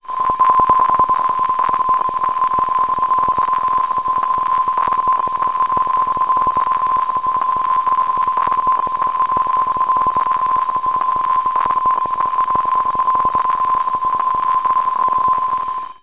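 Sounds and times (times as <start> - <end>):
science fiction alien code transmission: 0.0 - 16.0.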